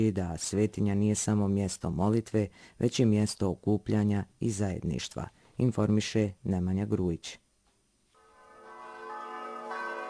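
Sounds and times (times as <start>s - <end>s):
speech: 0.0s - 7.4s
church bells ringing at a Serbian Orthodox church: 8.2s - 10.0s.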